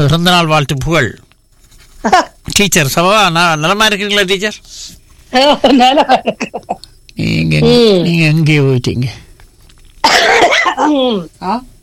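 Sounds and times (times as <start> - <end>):
speech: 0.0 - 1.2, 2.0 - 9.2, 10.0 - 11.7
harsh rough voiced coughing: 10.0 - 11.0.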